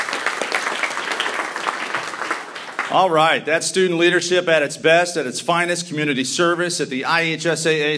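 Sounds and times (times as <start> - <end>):
room full of people applauding: 0.0 - 3.4
speech: 2.9 - 7.9.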